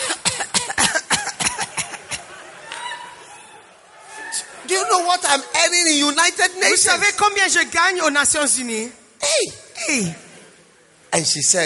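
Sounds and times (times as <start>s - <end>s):
woman coughing: 0.0s - 2.2s
laughter: 1.0s - 5.0s
speech: 4.7s - 10.2s, 11.2s - 11.6s.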